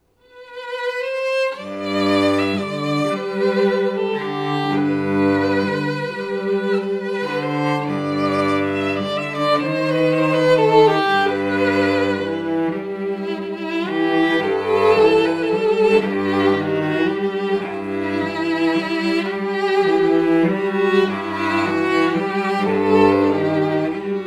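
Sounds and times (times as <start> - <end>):
string duo playing: 0.5 - 24.2.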